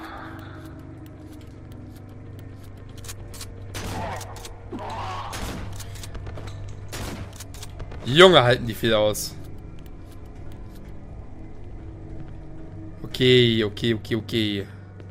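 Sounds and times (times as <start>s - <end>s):
video game shotgun blasts: 3.7s - 6.2s, 6.9s - 8.0s
speech: 8.1s - 9.4s, 13.2s - 14.8s.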